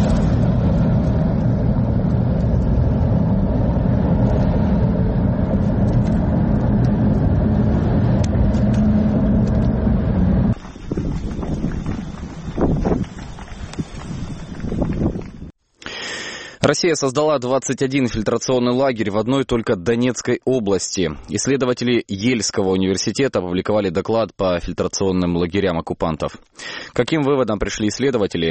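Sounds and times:
strong howling wind: 0:00.0 - 0:15.6
speech: 0:16.7 - 0:28.5.

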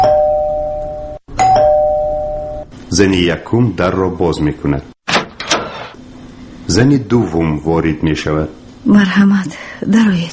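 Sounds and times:
doorbell ringing: 0:00.0 - 0:02.7
speech: 0:02.9 - 0:04.9, 0:06.7 - 0:10.3.

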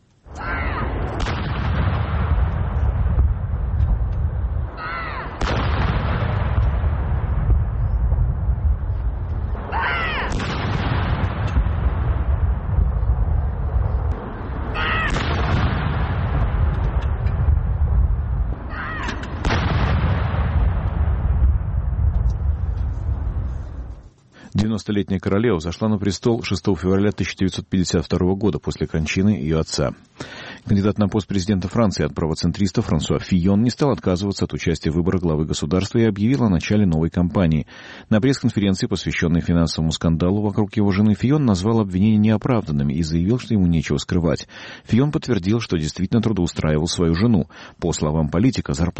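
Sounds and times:
long rumble of artillery salute: 0:00.3 - 0:24.1
artillery guns firing a salute in Green Park in London: 0:00.4 - 0:07.8, 0:09.4 - 0:12.6, 0:14.2 - 0:17.5, 0:18.6 - 0:22.0
speech: 0:24.8 - 0:48.9.

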